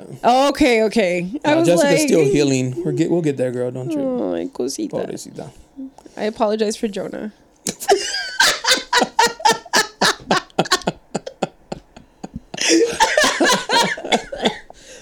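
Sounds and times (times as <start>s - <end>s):
speech: 0.2s - 5.6s, 6.2s - 7.9s
laughter: 1.5s - 3.5s, 7.7s - 14.9s
person coughing harshly: 12.6s - 14.8s.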